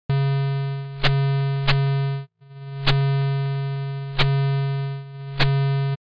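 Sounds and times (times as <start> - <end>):
summed output of fully-connected phase pulling oscillators as sine tones: 0.1 - 6.0.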